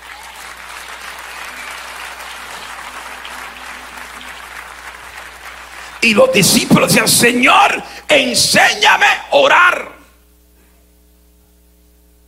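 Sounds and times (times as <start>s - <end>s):
congregation applauding in a church service: 0.0s - 7.4s
speech: 6.0s - 10.0s.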